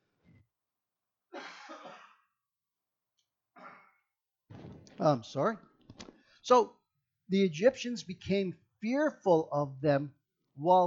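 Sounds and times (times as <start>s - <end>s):
person coughing harshly: 1.3s - 2.3s
speech: 5.0s - 5.7s, 6.5s - 10.8s.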